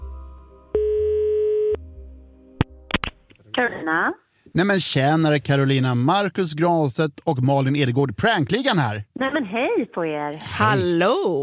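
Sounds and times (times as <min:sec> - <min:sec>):
telephone ringing tone while placing a call: 0:00.8 - 0:01.8
speech: 0:03.6 - 0:11.4.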